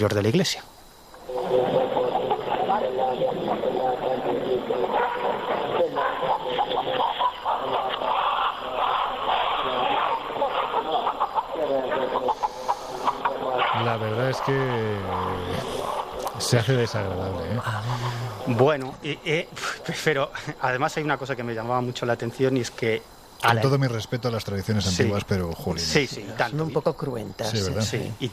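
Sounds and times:
speech: 0:00.0 - 0:00.8, 0:13.9 - 0:15.7, 0:16.4 - 0:28.3
murmur of voices in a reverberant indoor space: 0:01.2 - 0:18.6
chicken clucking and squawking during healing ritual in church: 0:01.3 - 0:16.3
laughter: 0:01.3 - 0:18.7.

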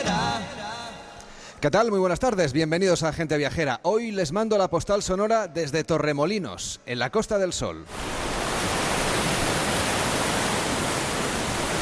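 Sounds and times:
speech: 0:01.6 - 0:08.2
sea waves washing on a beach at Torremolinos on the Costa del Sol: 0:07.9 - 0:11.8.

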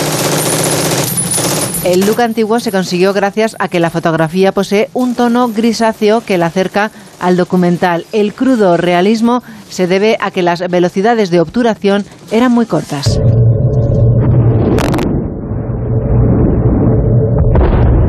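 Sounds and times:
automatic gunfire with live ammunition in a film battle scene: 0:00.0 - 0:02.1
speech: 0:01.8 - 0:13.5
constant low rumbling of a film battle: 0:13.1 - 0:18.0
explosions in a film beach landing battle: 0:13.1 - 0:18.0.

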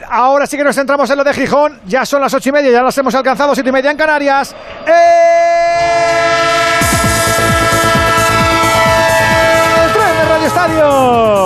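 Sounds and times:
speech: 0:00.1 - 0:05.4, 0:10.6 - 0:11.4
repeated falling electronic pulses: 0:03.8 - 0:11.2
train horn blast: 0:05.7 - 0:11.4.

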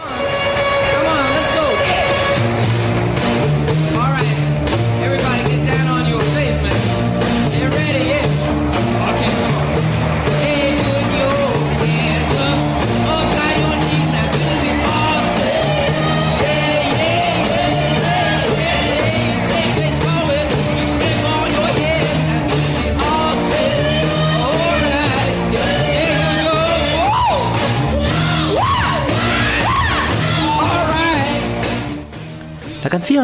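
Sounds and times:
1960s garage rock song: 0:00.0 - 0:33.2
driving guitars: 0:00.0 - 0:33.2
steady pounding drums: 0:00.4 - 0:32.1
shouted yelping vocals: 0:07.6 - 0:31.6.

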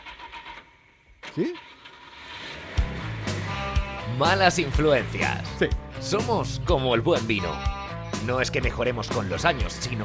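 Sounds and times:
car engine cranking: 0:00.0 - 0:05.6
speech: 0:01.4 - 0:01.7, 0:04.1 - 0:10.0.

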